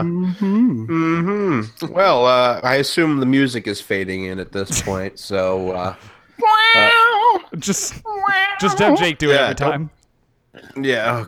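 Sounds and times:
speech: 0.0s - 10.0s, 10.6s - 11.2s
person yowling imitating a cat in heat: 8.1s - 9.1s.

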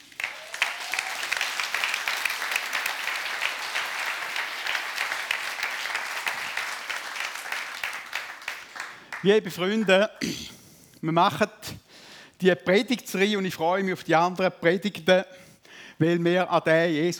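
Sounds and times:
audience applause: 0.0s - 9.4s
speech: 9.2s - 11.8s, 12.4s - 15.3s, 16.0s - 17.1s.

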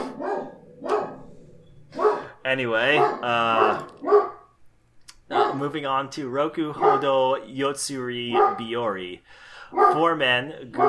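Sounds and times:
dogs barking and yelping: 0.0s - 2.3s, 2.9s - 4.6s, 6.8s - 7.2s, 8.3s - 8.7s, 9.7s - 10.1s
speech: 2.5s - 4.2s, 5.6s - 10.8s.

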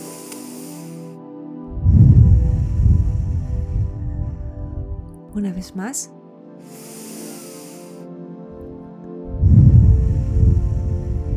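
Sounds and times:
slow deep breath in through the nose and out through the mouth: 0.0s - 4.9s, 6.6s - 8.2s, 9.3s - 11.3s
speech: 5.4s - 6.2s.

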